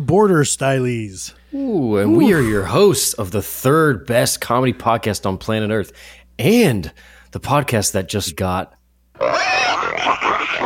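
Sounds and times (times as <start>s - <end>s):
speech: 0.1s - 10.6s
pig grunting and oinking: 9.2s - 10.6s.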